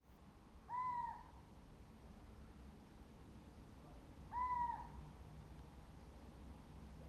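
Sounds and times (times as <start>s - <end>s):
faint low background noise: 0.0s - 7.0s
Athene noctua little owl call: 0.7s - 1.3s, 4.3s - 4.9s.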